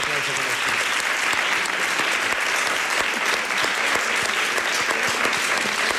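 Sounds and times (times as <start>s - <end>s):
audience applause: 0.0s - 5.9s.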